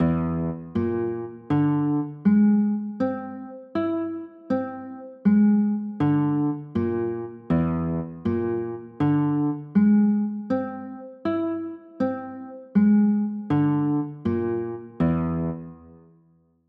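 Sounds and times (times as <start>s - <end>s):
B flat 9b5 chords: 0.0s - 16.1s.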